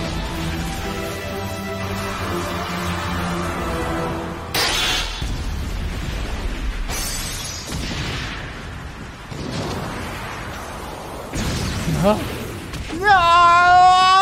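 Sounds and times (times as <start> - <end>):
crackling debris: 0.0 - 14.2
loud rumbling explosion sound effect: 4.7 - 13.2
speech: 12.0 - 12.3.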